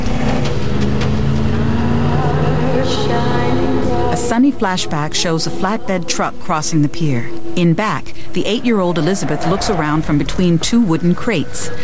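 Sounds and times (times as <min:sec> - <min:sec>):
Land Rover engine roaring while smashing through a gate and speeding down a pier: 0:00.0 - 0:11.8
speech: 0:04.3 - 0:11.8.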